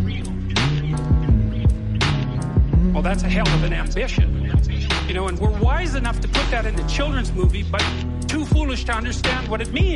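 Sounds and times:
people humming in the background: 0.0s - 4.9s
speech: 3.0s - 4.4s, 5.1s - 9.9s.

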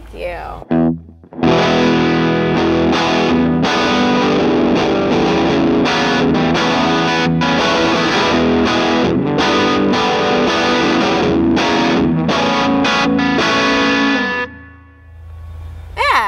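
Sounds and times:
speech: 0.1s - 1.0s
heavily overdriven electric guitar playing chugging riffs through overdrive pedal: 0.6s - 15.3s.

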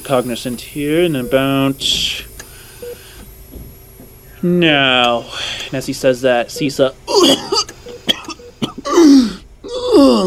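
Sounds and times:
speech: 0.1s - 2.3s, 4.4s - 7.6s, 10.0s - 10.2s
person coughing: 7.1s - 10.2s.

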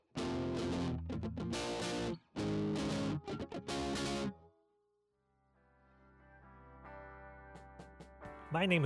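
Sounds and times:
electric guitar through a Boss DS-1 distortion pedal playing chords: 0.0s - 4.4s.

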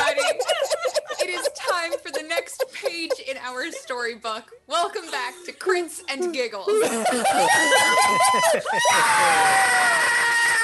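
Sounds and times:
laughter: 0.0s - 4.1s, 6.2s - 10.4s
speech: 3.6s - 10.2s
several people screaming loudly together: 7.1s - 10.6s.

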